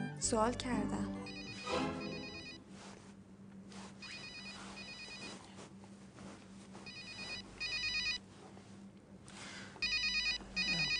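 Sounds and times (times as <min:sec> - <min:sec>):
speech: 0:00.2 - 0:01.2
mobile phone ringtone with electronic melodic tone: 0:01.2 - 0:02.7, 0:04.0 - 0:05.4, 0:06.9 - 0:08.2, 0:09.8 - 0:10.9.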